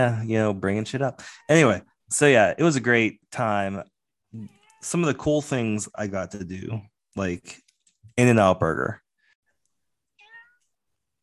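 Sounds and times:
speech: 0.0s - 7.6s, 8.2s - 9.0s
house cat meowing: 10.2s - 10.6s.

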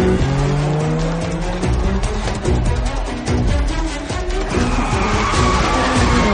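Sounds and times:
car engine revving hard speeding off along a street: 0.0s - 6.3s
car tires squealing against the road: 0.0s - 6.3s.

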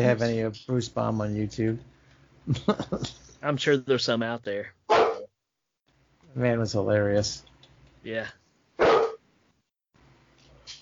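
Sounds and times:
speech: 0.0s - 5.0s, 6.3s - 8.4s
dog barking: 4.9s - 5.3s, 8.8s - 9.2s.

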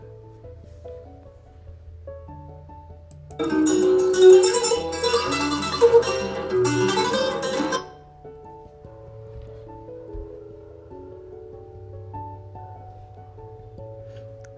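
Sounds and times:
acoustic guitar strumming: 3.4s - 8.0s.

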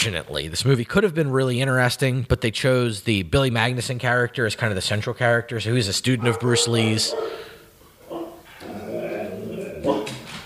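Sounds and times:
speech: 0.0s - 7.5s
dog barking at a door: 6.2s - 8.4s.

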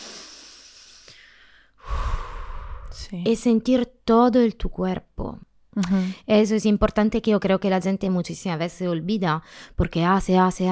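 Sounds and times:
slow deep mindful breath in and out: 0.0s - 3.1s
speech: 3.0s - 10.7s.

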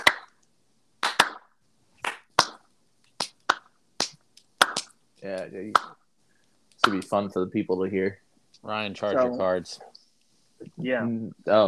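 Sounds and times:
slow hand claps: 0.0s - 0.4s, 1.0s - 5.0s, 5.7s - 6.0s, 6.8s - 7.2s
speech: 5.2s - 6.0s, 6.8s - 9.9s, 10.6s - 11.6s.

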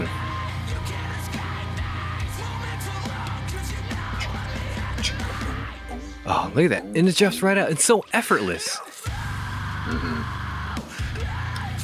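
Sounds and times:
dense distorted heavy rock music: 0.0s - 11.8s
raw strained vocal scream in a heavy rock song: 3.8s - 6.1s, 9.1s - 11.8s
speech: 6.3s - 8.9s.

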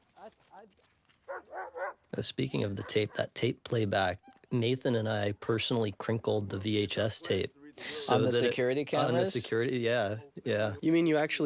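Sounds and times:
speech: 0.2s - 11.4s
dog barking: 1.3s - 2.0s, 2.7s - 3.3s
faint hiss: 2.2s - 11.4s.

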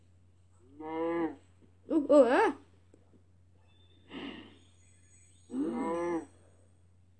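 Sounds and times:
faint constant hum: 0.0s - 7.1s
video game cow mooing: 0.7s - 1.4s, 5.5s - 6.4s
speech: 2.1s - 2.6s.

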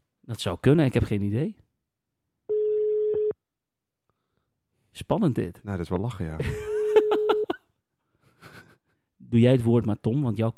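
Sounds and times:
speech: 0.3s - 1.6s, 5.0s - 6.7s, 9.3s - 10.5s
telephone ringback tone on a live call: 2.5s - 3.3s
laughter: 6.4s - 7.6s.

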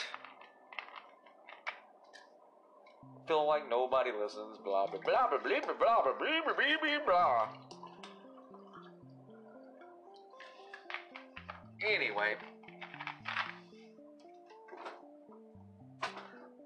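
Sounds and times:
speech: 3.1s - 7.6s, 11.9s - 12.5s
drink glugging and splashing as it is poured into a glass: 4.7s - 6.2s, 7.3s - 9.2s.

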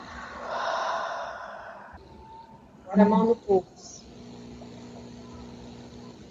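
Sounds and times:
slow conscious breath exhaled through the mouth during a relaxation breathing exercise: 0.0s - 2.0s
speech: 2.9s - 4.0s.

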